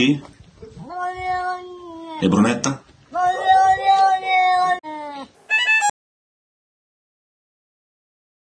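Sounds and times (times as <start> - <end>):
speech: 0.0 - 0.4, 2.2 - 2.9
angry cat giving a drawn-out meow: 0.8 - 2.4, 3.2 - 5.9.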